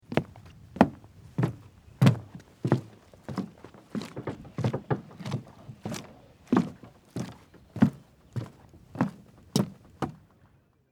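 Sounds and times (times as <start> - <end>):
footsteps walking on a boat dock: 0.0 - 10.4.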